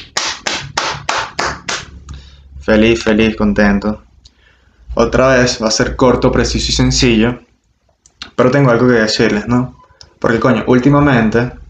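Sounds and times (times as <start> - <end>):
short round of applause of sharp hand claps: 0.0 - 2.2
speech: 2.7 - 4.1, 5.0 - 7.5, 8.4 - 11.6.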